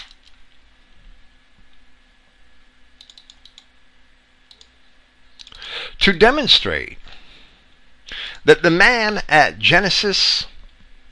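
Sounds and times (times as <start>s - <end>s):
steady low electrical hum: 0.0s - 11.1s
computer keyboard keys clicking: 3.0s - 3.7s
speech: 6.0s - 7.1s, 8.4s - 10.5s.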